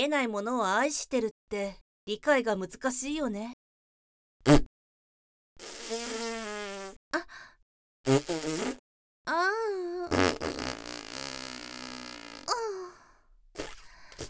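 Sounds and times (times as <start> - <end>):
speech: 0.0 - 3.6, 4.4 - 4.7, 8.0 - 10.6
farts: 4.4 - 4.7, 5.6 - 7.0, 8.1 - 8.8, 10.1 - 12.6, 13.6 - 14.2.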